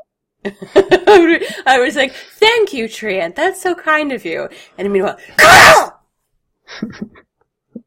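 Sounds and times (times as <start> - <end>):
speech: 0.4 - 5.9, 6.7 - 7.2
person sneezing: 5.4 - 6.0.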